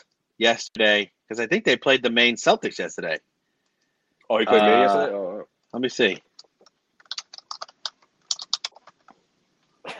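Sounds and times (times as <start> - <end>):
speech: 0.0 - 3.3, 4.3 - 6.3
typing on a computer keyboard: 6.3 - 9.2.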